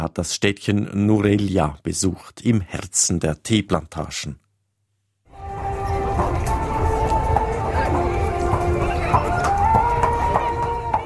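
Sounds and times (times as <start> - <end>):
speech: 0.0 - 4.4
faint tonal drone: 5.3 - 11.0
crowd chatter at a racecourse: 5.5 - 11.0
racehorses' hooves clattering and shuffling at a racecourse: 5.8 - 11.0.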